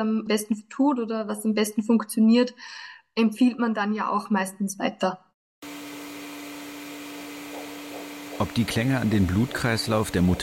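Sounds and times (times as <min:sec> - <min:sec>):
speech: 0:00.0 - 0:05.2, 0:08.4 - 0:10.4
vacuum cleaner running: 0:05.6 - 0:10.4.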